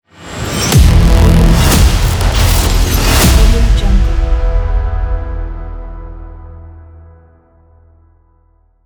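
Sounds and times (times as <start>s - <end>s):
glitch hybrid logo sound: 0.3s - 4.2s.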